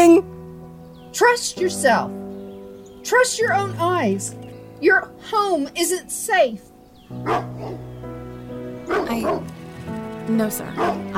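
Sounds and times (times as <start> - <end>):
speech: 1.2 - 2.2, 3.0 - 7.9, 9.0 - 9.6, 10.3 - 11.1
dog barking: 7.2 - 7.9, 8.9 - 9.4, 10.8 - 11.0.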